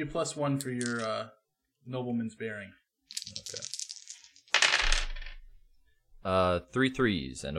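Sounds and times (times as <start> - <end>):
speech: 0.0 - 3.8, 6.2 - 7.5
dice rolled for a charm roll rattling across a hard surface: 0.6 - 1.2, 3.1 - 5.4.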